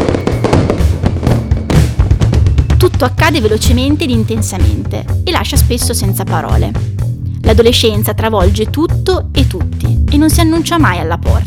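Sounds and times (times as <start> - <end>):
fireworks bursting in a rapid barrage: 0.0 - 4.0
speech: 3.0 - 11.4.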